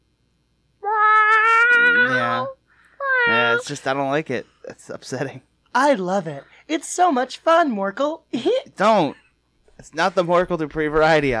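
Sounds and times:
person imitating a cat meow: 0.8 - 3.7
speech: 3.6 - 9.2, 9.8 - 11.3.

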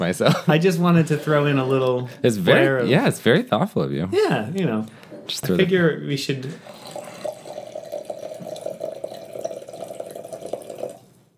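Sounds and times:
speech: 0.0 - 6.8
wine pouring into a glass: 6.5 - 11.2.

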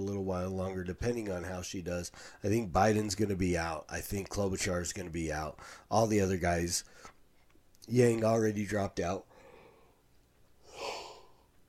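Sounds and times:
speech: 0.0 - 7.2, 7.9 - 9.3
stifled yawn: 10.6 - 11.5.

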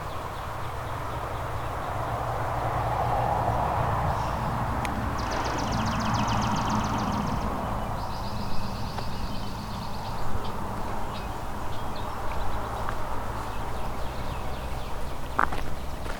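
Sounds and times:
low rumble at a nature preserve: 0.2 - 16.0.

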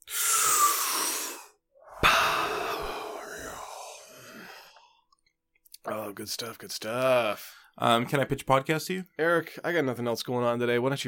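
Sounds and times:
big deep breath inhale and exhale: 0.0 - 5.2
speech: 6.1 - 11.0.

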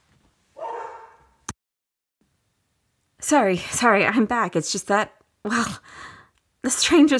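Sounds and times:
dog barking: 0.6 - 1.4
speech: 3.3 - 7.1.

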